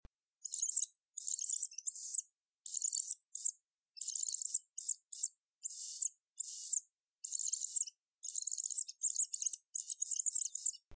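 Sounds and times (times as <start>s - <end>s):
mouse squeaking: 0.4s - 10.9s.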